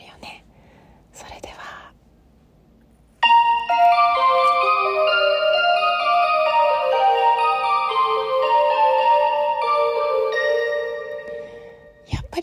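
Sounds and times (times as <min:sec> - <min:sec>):
train departure bell ringing a tinkling melody: 0:03.2 - 0:12.1.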